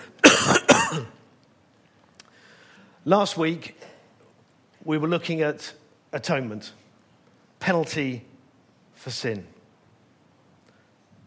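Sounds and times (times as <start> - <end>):
harsh coughs trailing into a throaty rasp: 0.2 - 1.2
speech: 3.1 - 3.9, 4.8 - 6.8, 7.6 - 8.3, 9.0 - 9.6.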